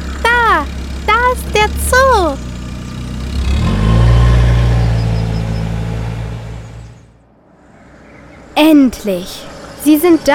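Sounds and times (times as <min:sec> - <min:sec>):
car engine revving as the car drives past: 0:01.4 - 0:08.5
speech: 0:08.9 - 0:10.3.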